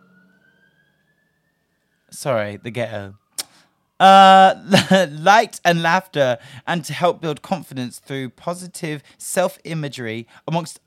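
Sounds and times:
wailing emergency siren outside: 0:00.0 - 0:09.2
speech: 0:02.1 - 0:03.2, 0:04.0 - 0:10.8
laughter: 0:04.6 - 0:05.2.

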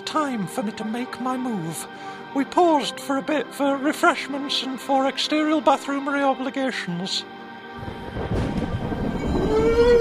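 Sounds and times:
speech: 0:00.1 - 0:07.9
deep rolling rumble of thunder as a storm breaks: 0:07.8 - 0:09.9.

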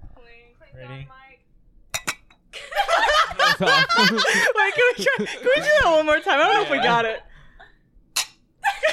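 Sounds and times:
speech: 0:00.3 - 0:01.4, 0:03.6 - 0:07.3
drinking glasses clinking in a toast: 0:01.9 - 0:02.5, 0:08.2 - 0:08.4
laughter: 0:02.6 - 0:07.3.

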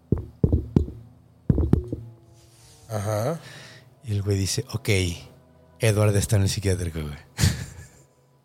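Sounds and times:
solid hollow knocking on a door: 0:00.1 - 0:02.1
speech: 0:02.9 - 0:07.4.

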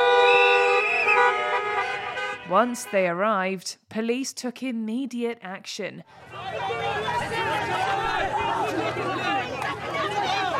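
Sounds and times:
car horns honking by protest convoy at the Arc de Triomphe in Paris: 0:00.0 - 0:03.3
traffic rumbling around the Arc de Triomphe in Paris: 0:00.0 - 0:03.4, 0:06.1 - 0:10.5
speech: 0:02.5 - 0:06.7.

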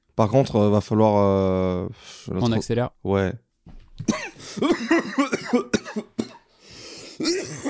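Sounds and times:
speech: 0:00.2 - 0:03.4, 0:04.0 - 0:06.1, 0:07.2 - 0:07.6
person coughing hard: 0:04.0 - 0:06.5, 0:07.1 - 0:07.6
breathy wheezing and rasping breaths: 0:06.5 - 0:07.6.

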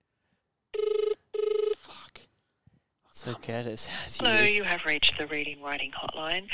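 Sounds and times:
telephone ringing: 0:00.7 - 0:01.8
speech: 0:03.2 - 0:06.5.

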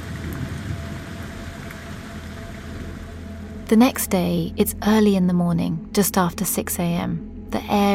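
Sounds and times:
raindrops spattering on a surface: 0:00.0 - 0:03.2
heavy rain falling: 0:00.0 - 0:04.1
speech: 0:03.7 - 0:07.9.

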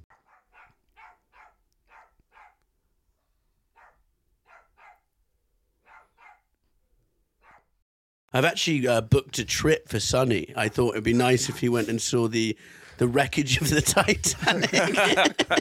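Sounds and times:
dog barking: 0:00.1 - 0:02.6, 0:03.2 - 0:05.1, 0:05.8 - 0:06.5, 0:07.4 - 0:07.8
speech: 0:08.3 - 0:15.5
laughter: 0:13.0 - 0:15.5.

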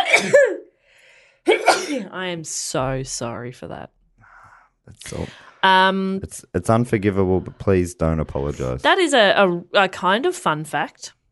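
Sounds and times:
person sneezing: 0:00.0 - 0:00.7, 0:01.5 - 0:02.1, 0:05.0 - 0:05.4
speech: 0:00.1 - 0:00.6, 0:01.4 - 0:04.0, 0:04.9 - 0:11.2.

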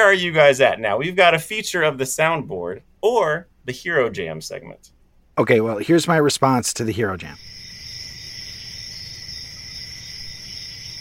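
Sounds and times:
speech: 0:00.0 - 0:07.6
crickets chirping: 0:06.9 - 0:11.0.

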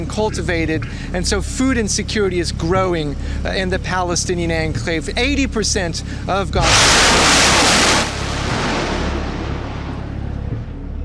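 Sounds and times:
speech: 0:00.0 - 0:07.5
salvo of rockets launching: 0:06.6 - 0:10.5.

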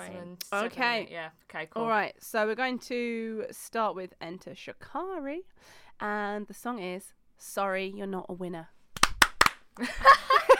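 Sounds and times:
speech: 0:00.1 - 0:08.8, 0:09.8 - 0:10.5
hand claps: 0:09.0 - 0:09.8
people laughing: 0:09.8 - 0:10.5.

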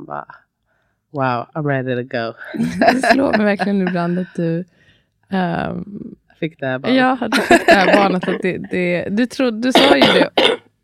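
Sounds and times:
speech: 0:00.1 - 0:00.5, 0:01.1 - 0:10.8
laughter: 0:02.6 - 0:04.2, 0:07.3 - 0:08.7
loud coughing: 0:07.6 - 0:08.4, 0:09.8 - 0:10.7
throat clearing: 0:09.8 - 0:10.7.

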